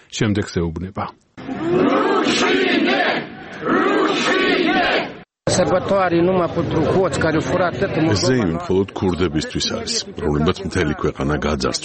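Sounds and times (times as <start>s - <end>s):
speech: 0.1s - 11.8s
crowd chanting at an anti-government protest: 1.4s - 5.3s.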